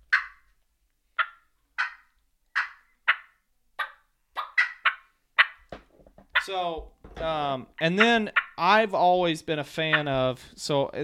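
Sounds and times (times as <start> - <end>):
turkey clucks made on a game call: 0.0 - 0.5, 1.2 - 5.7, 6.3 - 6.8, 7.8 - 8.8, 9.8 - 10.3
speech: 6.5 - 11.0.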